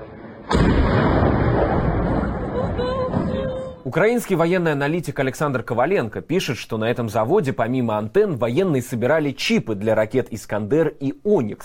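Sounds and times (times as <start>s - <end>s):
loud explosion: 0.0s - 3.8s
sustained roaring rumble: 0.0s - 3.8s
speech: 3.8s - 11.6s.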